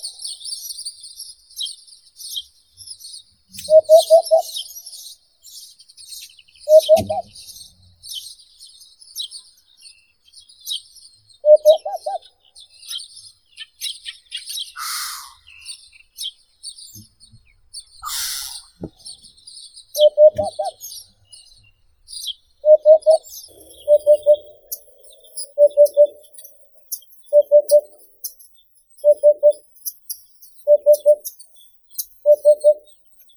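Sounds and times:
hoopoe Upupa epops calling: 3.6 - 4.5, 6.7 - 7.4, 14.7 - 15.6, 18.1 - 19.1, 20.0 - 20.8, 22.7 - 26.5, 27.3 - 28.0, 29.1 - 29.6, 30.7 - 31.3, 32.3 - 32.8.

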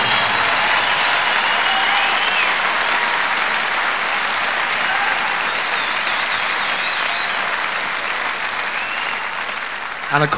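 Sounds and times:
faint whistles: 0.0 - 3.2, 5.0 - 7.6, 8.6 - 9.5
cheering: 0.0 - 10.3
large audience applauding at a live concert: 0.0 - 10.3
speech: 10.1 - 10.3.

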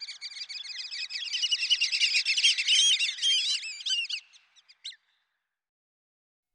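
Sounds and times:
Black-bellied whistling duck calls: 0.4 - 4.3.

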